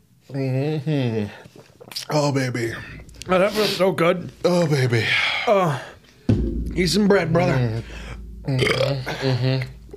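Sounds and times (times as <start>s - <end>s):
speech: 0.3s - 6.0s, 6.8s - 9.8s
long loud croaky burps with a deep rumbling tone: 8.5s - 9.9s.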